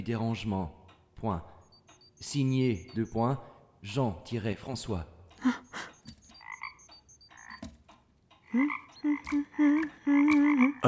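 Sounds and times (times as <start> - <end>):
speech: 0.0 - 1.5, 2.2 - 5.6, 8.6 - 10.8
frogs' deeper rhythmic croaks: 0.0 - 10.8
frogs croaking in a dense chorus: 0.4 - 3.8, 5.4 - 10.8
frogs' high repeated chirps: 1.5 - 3.5, 5.4 - 7.8, 8.5 - 10.8.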